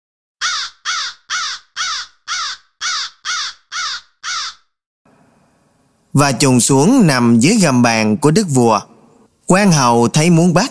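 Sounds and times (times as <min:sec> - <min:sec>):
crow cawing: 0:00.4 - 0:04.8
speech: 0:06.1 - 0:08.9, 0:09.5 - 0:10.6.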